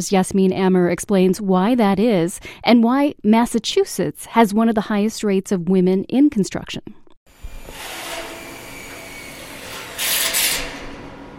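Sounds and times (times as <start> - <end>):
speech: 0.0 - 7.0
power drill grinding into metal beams on a construction job: 7.3 - 11.3.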